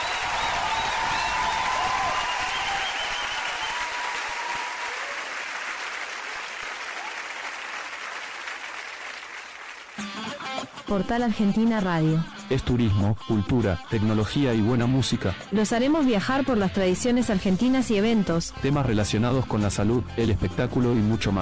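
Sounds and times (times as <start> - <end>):
audience applause: 0.0 - 10.0
speech: 10.9 - 21.4.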